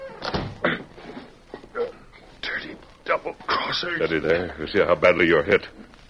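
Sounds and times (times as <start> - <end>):
door shutting with a solid thunk: 0.0 - 0.6
speech: 3.7 - 5.8.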